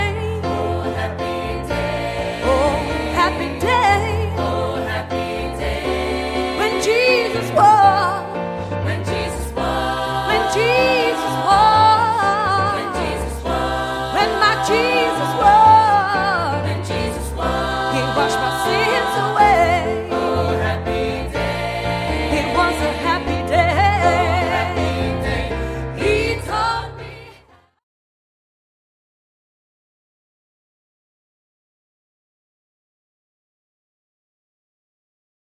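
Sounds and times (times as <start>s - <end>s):
funky gospel choir: 0.1s - 27.6s.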